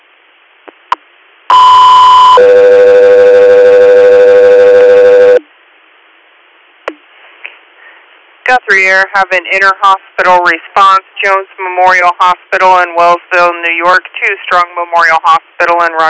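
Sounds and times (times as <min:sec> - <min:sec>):
two-tone radio alert: 0:01.5 - 0:05.4
speech: 0:02.4 - 0:02.6, 0:08.5 - 0:16.0.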